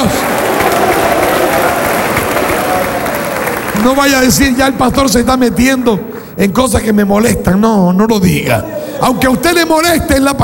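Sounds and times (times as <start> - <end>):
church audience applause during a church service: 0.0 - 6.0
speech: 3.8 - 10.4.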